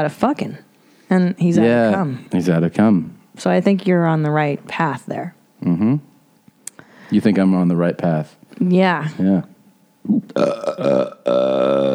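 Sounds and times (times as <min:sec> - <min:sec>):
speech: 0:00.0 - 0:06.1, 0:07.1 - 0:11.9
loud drawn-out resonant belch: 0:10.2 - 0:11.9.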